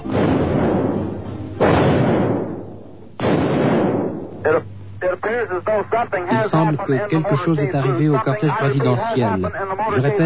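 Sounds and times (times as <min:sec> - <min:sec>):
gunshots in archival low-fidelity recording: 0:00.0 - 0:04.4
speech: 0:04.4 - 0:10.2.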